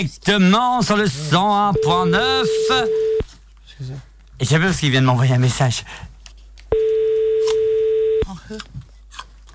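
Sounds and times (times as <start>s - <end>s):
speech: 0.0s - 3.1s, 3.8s - 6.1s, 8.5s - 8.7s
telephone line tone while dialing a caller: 1.8s - 3.2s, 6.8s - 8.3s.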